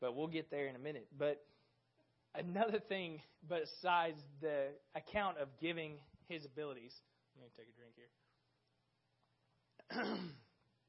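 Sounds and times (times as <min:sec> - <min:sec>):
speech: 0:00.0 - 0:01.6, 0:02.3 - 0:08.2, 0:09.9 - 0:10.5
throat clearing: 0:09.8 - 0:10.6.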